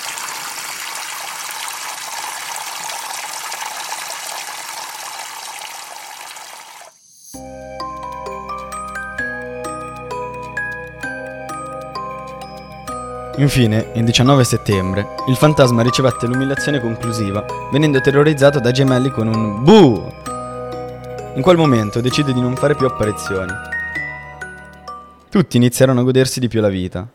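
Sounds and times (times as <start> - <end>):
water poured from a jug over a person's head: 0.0 - 7.0
light tinkling music: 7.0 - 25.8
speech: 13.4 - 20.2, 21.4 - 23.7, 25.4 - 27.1.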